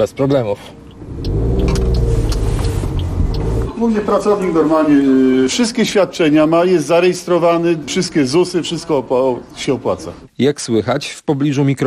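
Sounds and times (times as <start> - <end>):
speech: 0.0 - 1.4, 3.8 - 11.8
car engine rumble while driving to a car repair workshop: 0.0 - 3.8.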